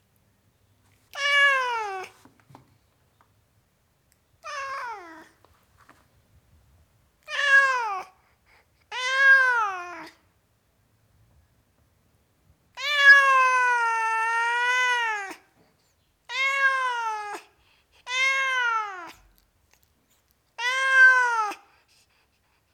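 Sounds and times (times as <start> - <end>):
tom cat meowing: 1.1 - 2.1, 4.4 - 5.4, 7.2 - 8.1, 8.9 - 10.2, 12.8 - 15.4, 16.3 - 17.5, 18.1 - 19.3, 20.6 - 21.6.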